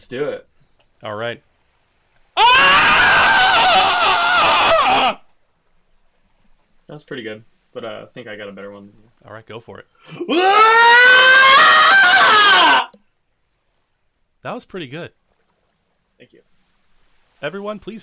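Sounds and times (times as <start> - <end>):
speech: 0.0 - 1.5, 6.9 - 13.0, 14.4 - 15.2, 16.2 - 16.5, 17.4 - 18.0
person screaming loudly in a screaming contest: 2.4 - 5.2, 10.1 - 12.9.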